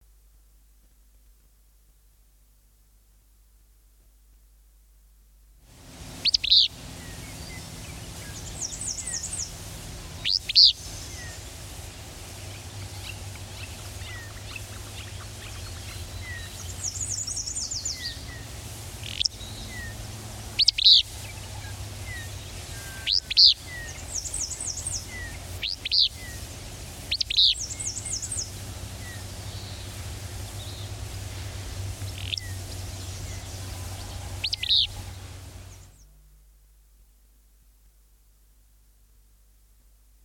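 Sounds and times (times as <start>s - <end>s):
willow flycatcher: 5.7s - 36.2s
songbirds: 5.8s - 36.2s.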